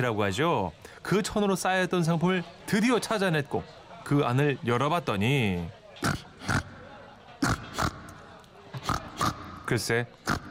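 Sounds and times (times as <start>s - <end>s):
speech: 0.0s - 6.6s, 9.7s - 10.3s
pig oinking and grunting: 6.0s - 6.8s, 7.4s - 10.4s.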